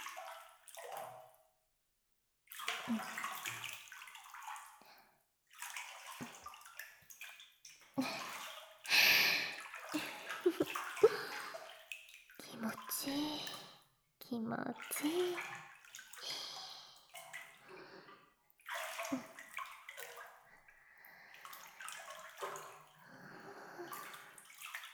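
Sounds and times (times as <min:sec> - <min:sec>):
hot bath water sloshing and splashing as someone settles in: 0:00.0 - 0:01.4, 0:02.5 - 0:04.8, 0:05.5 - 0:13.8, 0:14.7 - 0:24.9
speech: 0:02.9 - 0:03.2, 0:14.3 - 0:15.6.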